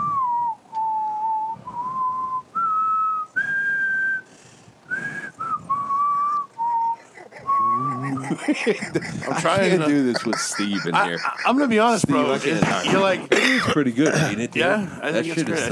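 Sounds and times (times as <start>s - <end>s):
person whistling a song melody: 0.0s - 4.3s, 4.9s - 8.4s
laughter: 6.4s - 14.5s
speech: 8.3s - 15.6s.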